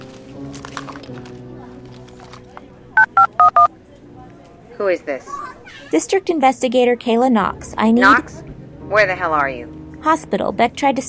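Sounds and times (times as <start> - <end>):
faint murmuring voices: 1.4 - 8.9
touch-tone beeps of a phone number being keyed in: 3.0 - 3.7
speech: 4.8 - 11.0.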